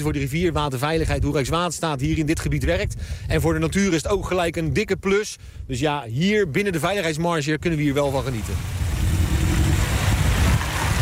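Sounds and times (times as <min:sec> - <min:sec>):
speech: 0:00.0 - 0:08.8
car driving along a road through a riverside polder area: 0:08.4 - 0:11.0.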